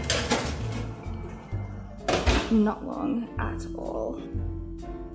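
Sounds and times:
metal cookie tray clattering into an oven: 0:00.0 - 0:01.1
speech: 0:02.5 - 0:05.0.

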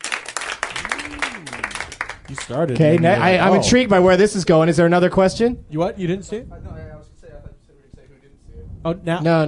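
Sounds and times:
crowd applause: 0:00.0 - 0:03.7
speech: 0:02.3 - 0:06.7, 0:08.8 - 0:09.4.

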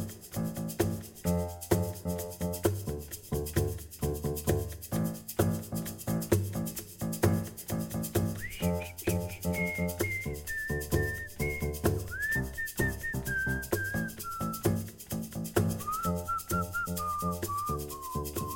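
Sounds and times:
bouncy instrumental groove with a steady beat: 0:00.0 - 0:18.5
clear bright whistled melody: 0:08.4 - 0:14.9, 0:15.8 - 0:18.5.

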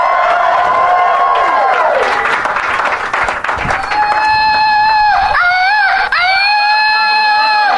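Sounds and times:
noisy crowd: 0:00.0 - 0:07.7
man in the audience whooping and wailing in a high voice: 0:03.8 - 0:07.7.

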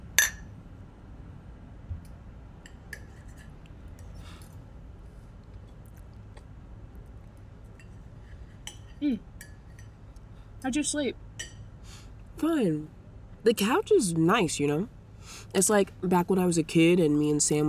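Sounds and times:
glasses clinking in a toast: 0:00.2 - 0:00.5
speech: 0:09.0 - 0:09.3, 0:10.6 - 0:11.2, 0:12.4 - 0:17.6.

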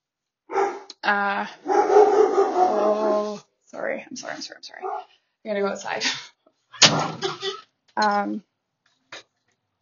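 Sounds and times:
dog barking: 0:00.5 - 0:00.9, 0:01.6 - 0:03.3, 0:04.8 - 0:05.1
speech: 0:01.1 - 0:06.3, 0:06.9 - 0:08.5.

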